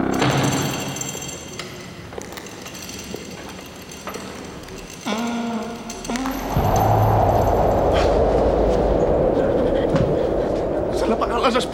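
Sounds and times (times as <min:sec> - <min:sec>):
heavy chains rattling and clanking: 0:00.1 - 0:08.0
rushing rumble: 0:00.5 - 0:11.7.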